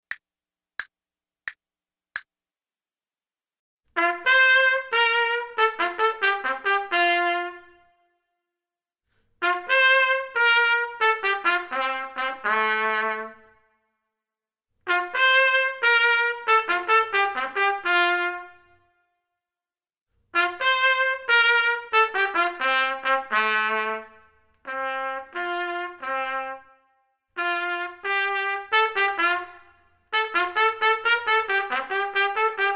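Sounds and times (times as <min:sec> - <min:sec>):
trumpet: 0:03.9 - 0:08.2, 0:09.4 - 0:13.7, 0:14.8 - 0:19.0, 0:20.3 - 0:32.7.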